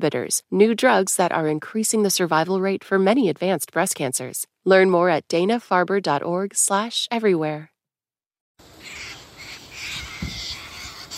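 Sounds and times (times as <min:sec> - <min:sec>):
speech: 0:00.0 - 0:07.7
sulphur-crested cockatoos screeching in eucalyptus trees in Melbourne, Australia: 0:08.8 - 0:11.1
low thump: 0:10.2 - 0:10.5.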